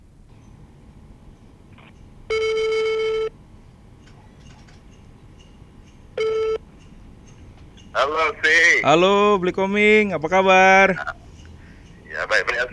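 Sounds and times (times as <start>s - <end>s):
telephone ringback tone as a call is placed: 2.3s - 3.3s, 6.2s - 6.6s
speech: 8.1s - 11.2s.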